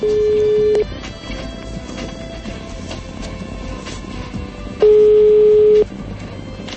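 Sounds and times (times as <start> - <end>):
telephone ringback tones as a computer dials a phone number: 0.0 - 0.9, 4.8 - 5.9.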